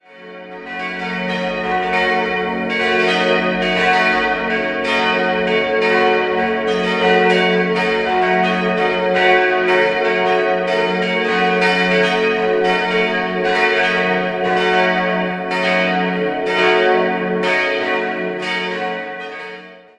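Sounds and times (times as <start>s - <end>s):
church bells of the Apostelkirche in Neuburg ringing: 0.0s - 19.9s.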